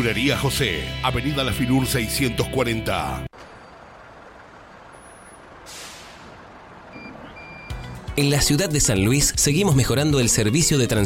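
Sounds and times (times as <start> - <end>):
speech: 0.0 - 3.4, 8.2 - 11.0
new municipal city bus engine idling in San Luis: 3.1 - 10.2
city bus air brakes hissing: 5.0 - 6.5
faint high city bus reversing beeps: 6.9 - 7.8.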